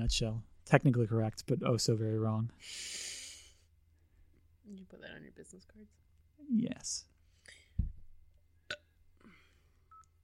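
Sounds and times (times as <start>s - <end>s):
speech: 0.0s - 3.2s, 4.7s - 7.1s
person burping after drinking sparkling water: 8.7s - 9.0s.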